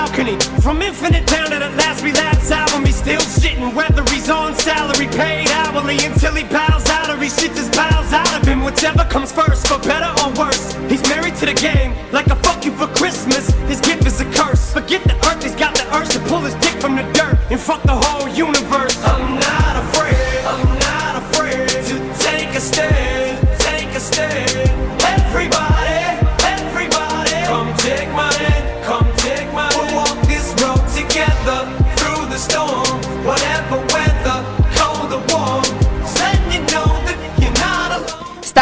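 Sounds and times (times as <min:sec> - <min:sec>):
rap track with punchy drums, bass and melodic backing: 0:00.0 - 0:38.6
speech: 0:00.2 - 0:19.4.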